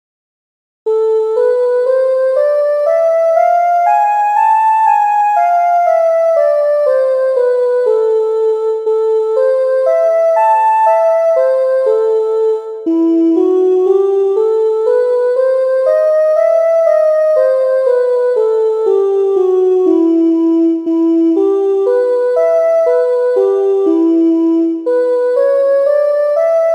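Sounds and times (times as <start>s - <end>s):
harmonic minor scale exercise: 0.9s - 26.7s.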